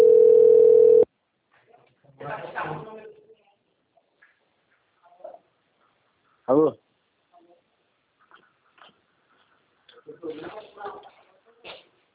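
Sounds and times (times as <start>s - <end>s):
ringback tone of an outgoing telephone call: 0.0s - 1.1s
speech: 6.5s - 6.8s.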